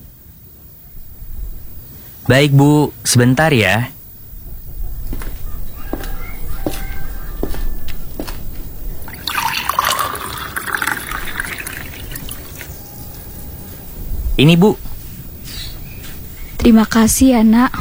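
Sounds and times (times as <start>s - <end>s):
speech: 2.3s - 4.0s, 14.4s - 14.8s, 16.7s - 17.7s
water being poured for drinking: 9.0s - 12.8s.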